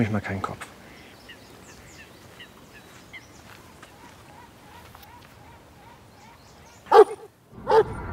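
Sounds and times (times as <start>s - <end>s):
speech: 0.0s - 0.8s
dog barking: 6.9s - 7.9s.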